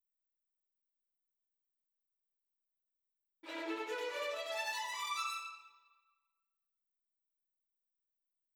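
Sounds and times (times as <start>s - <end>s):
violins: 3.4s - 5.8s.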